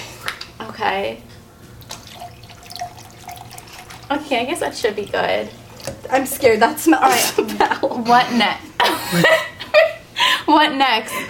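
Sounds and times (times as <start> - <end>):
speech: 0.8 - 1.3, 4.1 - 9.5, 10.5 - 11.2
thick pulpy liquid with chunks pouring into a container: 1.8 - 6.4.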